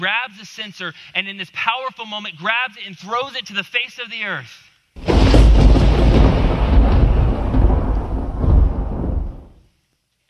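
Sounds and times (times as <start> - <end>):
speech: 0.0 - 6.7
deep loud thunder rumble with crackling texture: 5.0 - 9.6.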